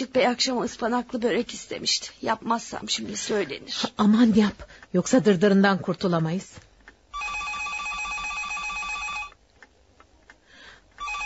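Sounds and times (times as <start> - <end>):
speech: 0.1 - 6.6
telephone ringing with an electronic trill: 7.1 - 9.4, 11.0 - 11.2.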